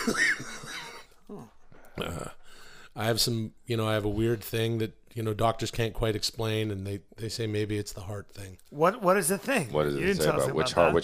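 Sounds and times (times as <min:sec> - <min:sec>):
speech: 0:00.0 - 0:00.4, 0:03.0 - 0:11.0
harsh raspy cough: 0:00.0 - 0:01.2.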